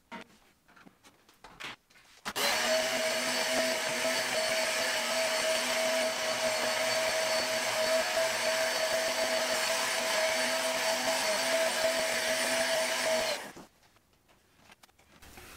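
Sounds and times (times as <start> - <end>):
vacuum cleaner running: 2.4 - 13.6.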